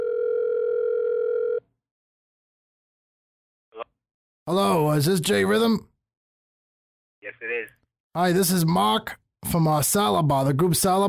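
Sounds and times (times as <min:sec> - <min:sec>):
telephone dial tone: 0:00.0 - 0:01.6
speech: 0:04.5 - 0:05.9, 0:07.4 - 0:11.0.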